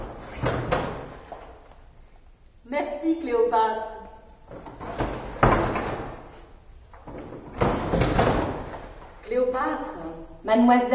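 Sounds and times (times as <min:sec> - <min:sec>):
door pushed shut with knocks and a thud: 0:00.0 - 0:01.6, 0:04.5 - 0:09.2
speech: 0:03.0 - 0:04.0, 0:09.6 - 0:10.9.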